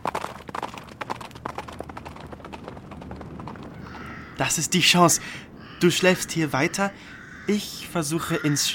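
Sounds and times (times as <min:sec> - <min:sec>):
horse galloping away with hooves clip-clopping: 0:00.0 - 0:05.2
speech: 0:04.4 - 0:08.7.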